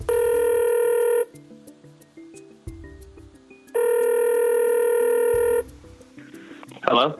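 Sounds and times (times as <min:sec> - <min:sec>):
person answering the telephone: 0:00.0 - 0:01.3, 0:03.8 - 0:05.6
outgoing telephone call ringback tones: 0:00.0 - 0:01.4, 0:03.8 - 0:05.7.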